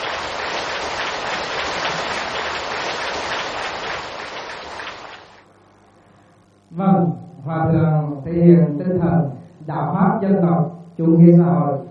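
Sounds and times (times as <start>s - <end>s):
crowd applause at a temple inauguration ceremony: 0.0s - 5.4s
speech: 6.8s - 11.9s.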